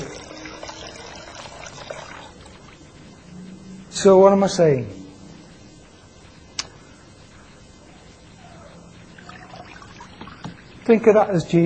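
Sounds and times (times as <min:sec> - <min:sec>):
water trickling from a soaked sponge used to wash a car: 0:00.0 - 0:02.9, 0:09.1 - 0:10.9
speech: 0:04.0 - 0:05.0, 0:10.9 - 0:11.6
sharp click: 0:06.6 - 0:06.8.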